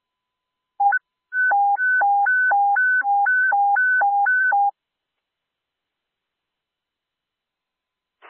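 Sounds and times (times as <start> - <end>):
brief beep of an airport communications center dispatch sound test: 0.8 - 4.7.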